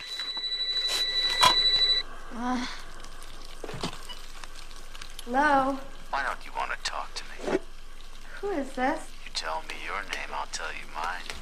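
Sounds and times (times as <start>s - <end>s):
telephone ringing with fast trilling warble: 0.0s - 2.0s
speech: 2.5s - 2.8s, 5.3s - 7.6s, 8.4s - 11.4s.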